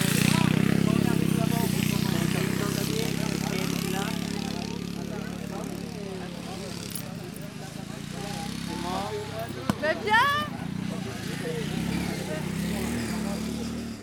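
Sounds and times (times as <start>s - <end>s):
crowd chatter: 0.0s - 14.0s
racing ride-on lawn mower engines droning: 0.0s - 14.0s.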